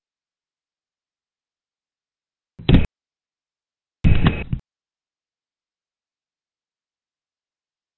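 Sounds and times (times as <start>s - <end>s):
back door: 2.6s - 2.9s, 4.0s - 4.6s.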